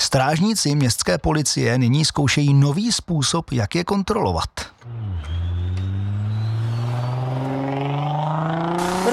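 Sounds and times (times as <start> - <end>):
speech: 0.1 - 5.3
car speeding past on a town main road: 4.8 - 9.1.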